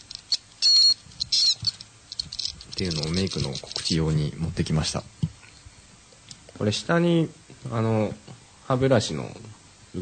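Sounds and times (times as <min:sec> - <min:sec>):
handheld electronic toy rattling when shaken: 0:00.0 - 0:04.3
handheld electronic toy sounding high electronic squeaks like an animal cry: 0:00.3 - 0:01.8
speech: 0:02.8 - 0:05.3, 0:06.6 - 0:10.0.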